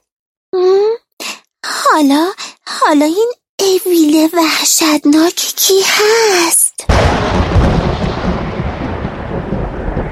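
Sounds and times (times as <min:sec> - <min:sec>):
speech: 0:01.9 - 0:07.7
deep rolling thunder of a heavy thunderstorm: 0:06.9 - 0:10.1.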